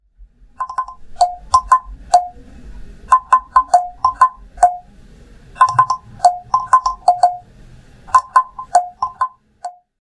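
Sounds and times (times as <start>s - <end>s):
oak and ipe log drum: 0.6s - 2.4s, 3.1s - 4.9s, 5.6s - 7.5s, 8.1s - 9.8s.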